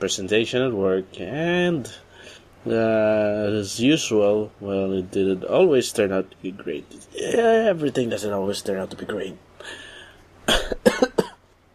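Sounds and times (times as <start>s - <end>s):
speech: 0.0s - 9.8s
person coughing: 10.5s - 11.4s.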